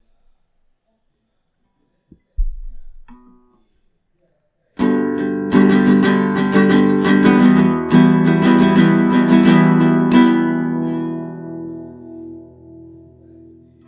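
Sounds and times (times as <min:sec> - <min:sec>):
guitar with noise reduction: 0:04.8 - 0:13.8.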